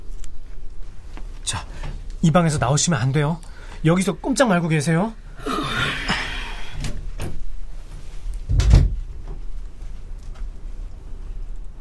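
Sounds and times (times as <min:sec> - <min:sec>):
low hum: 0:00.0 - 0:11.7
speech: 0:01.5 - 0:05.9
door pushed shut with a solid thud: 0:08.5 - 0:09.0.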